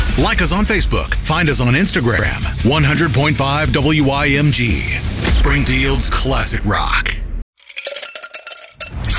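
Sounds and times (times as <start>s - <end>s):
speech: 0.2s - 7.2s
metallic clinks of a cola being opened: 7.6s - 9.1s.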